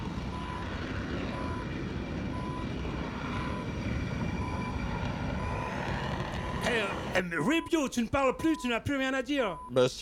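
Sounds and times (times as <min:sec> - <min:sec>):
aircraft engines roaring on an aircraft carrier: 0:00.0 - 0:07.2
speech: 0:07.2 - 0:09.9.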